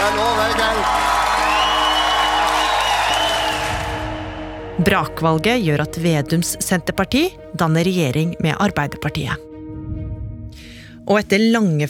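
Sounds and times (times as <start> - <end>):
crowd clapping: 0.0 - 4.3
cheers and whoops: 0.0 - 4.4
speech: 4.8 - 9.5, 11.1 - 11.8.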